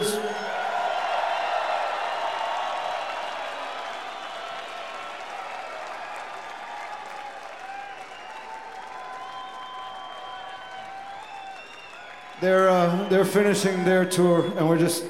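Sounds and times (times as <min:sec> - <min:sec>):
large concert audience applauding: 0:00.0 - 0:14.1
speech: 0:12.4 - 0:15.0.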